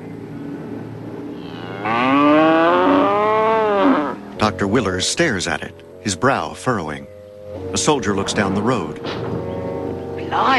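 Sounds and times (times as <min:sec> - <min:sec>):
cow lying on its side in a field mooing: 0:01.3 - 0:04.3
speech: 0:04.4 - 0:09.3, 0:10.3 - 0:10.5.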